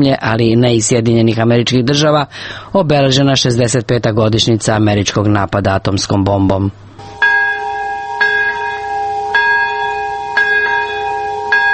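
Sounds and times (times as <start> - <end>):
speech: 0.0 - 6.8
memorial bells ringing: 7.0 - 11.7.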